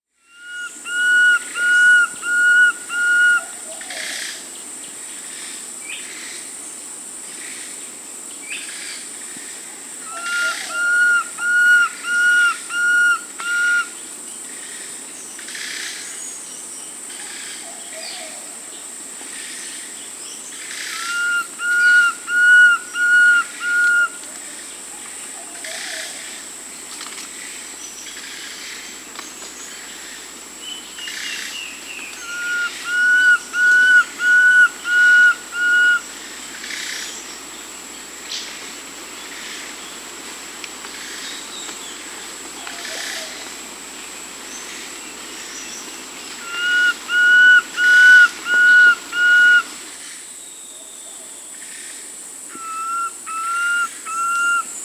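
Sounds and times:
Fasciated Antshrike Cymbilaimus lineatus calling in Peru: 0.4s - 3.4s, 10.1s - 14.0s, 20.8s - 24.3s, 32.0s - 36.1s, 46.3s - 49.8s, 52.5s - 54.8s.

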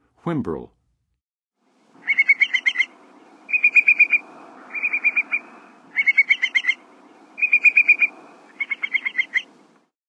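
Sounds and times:
whimbrel calling in the western USA: 2.0s - 9.6s.

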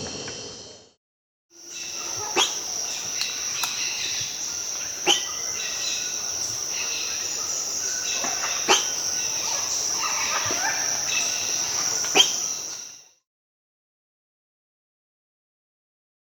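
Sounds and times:
Razor-billed Curassow Mitu tuberosa calling in Peru: 1.7s - 12.9s.

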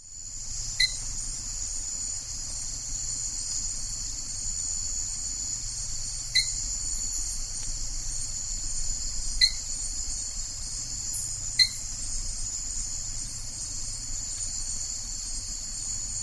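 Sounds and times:
steady high insect drone in the Ecuadorian Amazon: 0.0s - 16.2s
Dark-spotted thin-toed frog giving whistled notes in the Ecuadorian Amazon: 0.8s - 1.0s, 6.4s - 6.6s, 9.4s - 9.6s, 11.6s - 11.8s.

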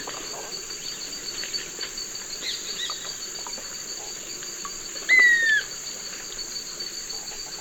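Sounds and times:
shrill insect chorus: 0.0s - 7.5s
Swainson's flycatcher whistled note in the eastern lowlands of South America: 5.1s - 5.7s.

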